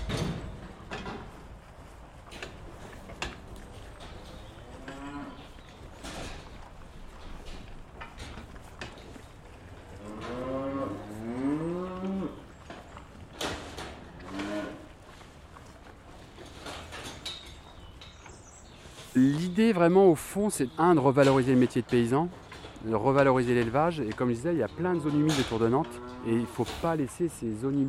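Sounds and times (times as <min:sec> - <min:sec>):
herd of cows mooing: 0:03.0 - 0:05.6, 0:09.8 - 0:12.5, 0:13.9 - 0:15.0, 0:24.6 - 0:26.8
speech: 0:19.2 - 0:27.8.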